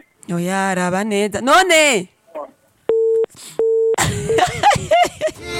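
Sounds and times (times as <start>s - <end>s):
speech: 0.3s - 2.1s
telephone line tone beeps: 2.9s - 4.0s
laughter: 4.0s - 5.5s.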